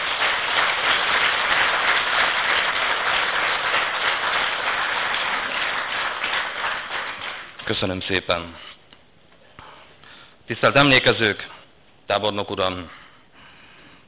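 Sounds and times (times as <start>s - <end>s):
crowd applauding student performers: 0.0s - 7.6s
speech: 7.8s - 8.7s, 10.5s - 11.5s, 12.1s - 13.0s.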